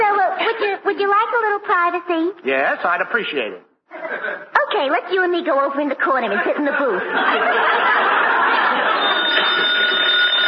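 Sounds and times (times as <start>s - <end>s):
speech: 1.0s - 8.9s
laughter: 3.9s - 4.5s, 6.3s - 10.2s
telephone bell ringing: 8.4s - 10.4s.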